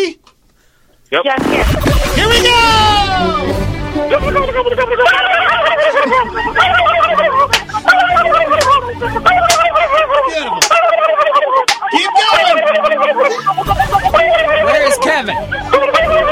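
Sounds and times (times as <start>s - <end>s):
speech: 1.1s - 16.3s
people laughing: 4.1s - 16.3s
people on a phone line imitating turkey gobbling: 4.1s - 16.3s.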